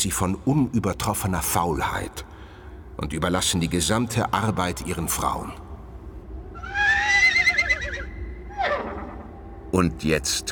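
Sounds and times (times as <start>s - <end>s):
speech: 0.0s - 2.3s, 3.0s - 5.6s, 9.7s - 10.5s
faint low rumble: 0.0s - 7.3s, 7.9s - 10.5s
horse whinnying in mist-covered riverside meadows at dawn: 6.6s - 9.4s.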